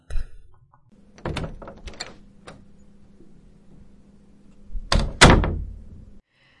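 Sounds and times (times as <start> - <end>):
low hum: 0.2 - 6.2
small wooden chapel door creaking and rattling: 1.0 - 2.8, 4.7 - 6.1
small wooden door thudding shut and latching: 1.1 - 2.6, 4.8 - 5.9.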